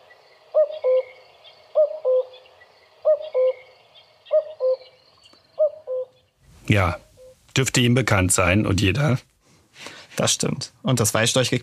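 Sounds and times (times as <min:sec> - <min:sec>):
common cuckoo two-note call: 0:00.6 - 0:01.2, 0:01.8 - 0:02.4, 0:03.1 - 0:03.6, 0:04.3 - 0:05.0
speech: 0:06.7 - 0:07.0, 0:07.6 - 0:11.6.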